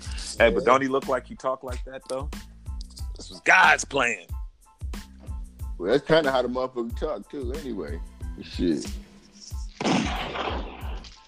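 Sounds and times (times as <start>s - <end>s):
speech: 0.4s - 2.4s, 3.2s - 4.4s, 5.8s - 9.1s
booming gunshot sound effects: 9.8s - 11.0s.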